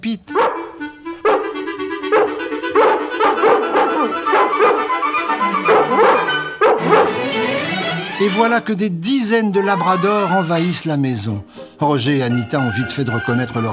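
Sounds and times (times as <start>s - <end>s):
speech: 0.0s - 0.6s, 8.2s - 13.7s
dog barking behind a door: 0.3s - 7.3s.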